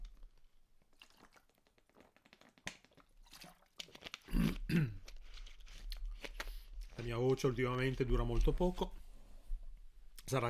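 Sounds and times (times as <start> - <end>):
slurping and swallowing water: 0.9 - 6.1
person sipping water: 0.9 - 6.7
speech: 4.4 - 5.0, 7.0 - 9.0, 10.3 - 10.4.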